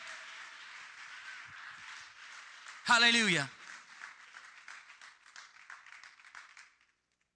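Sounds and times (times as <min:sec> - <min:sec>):
crowd clapping hands: 0:00.0 - 0:07.3
speech: 0:02.9 - 0:03.6.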